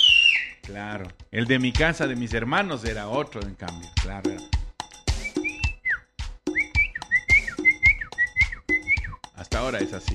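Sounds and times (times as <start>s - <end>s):
person whistling a family signal call: 0.0s - 0.6s, 5.1s - 9.2s
speech: 0.7s - 4.5s, 9.6s - 10.1s.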